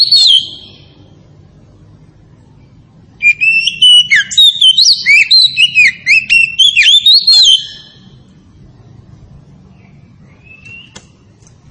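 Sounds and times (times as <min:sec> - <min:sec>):
Oriental magpie-robin of the Tretes variety singing: 0:00.0 - 0:01.0, 0:02.5 - 0:08.3, 0:09.6 - 0:11.3.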